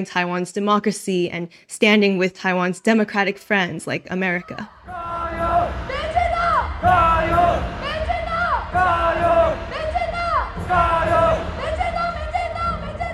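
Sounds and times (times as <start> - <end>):
speech: 0.0 - 5.1
people shouting: 4.7 - 11.6
large crowd at a Taiwan identity rally chanting a Chinese cheer: 4.7 - 13.1.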